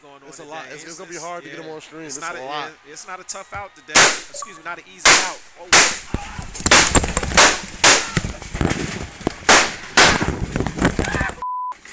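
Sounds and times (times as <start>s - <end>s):
speech: 0.1s - 6.2s
gunshots in livestream footage of a mass shooting at a video game tournament: 3.9s - 4.4s, 5.0s - 11.1s.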